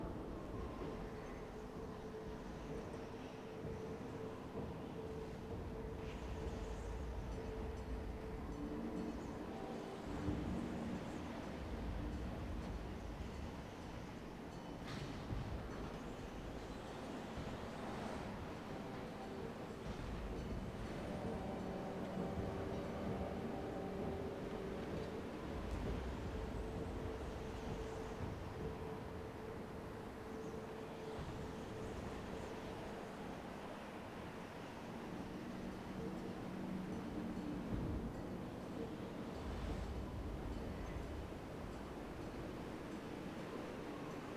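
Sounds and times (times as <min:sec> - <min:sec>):
wind: 0:00.0 - 0:44.3.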